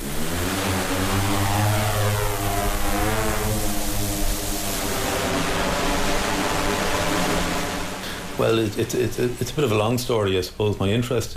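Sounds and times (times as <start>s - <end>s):
drone flying overhead with buzzing whine of spinning rotors: 0.0s - 10.2s
speech: 8.4s - 11.3s.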